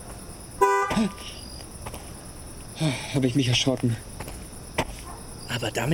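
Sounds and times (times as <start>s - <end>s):
car horn blast from a Dodge: 0.6s - 1.0s
speech: 1.0s - 1.4s, 2.8s - 4.1s, 5.5s - 5.9s.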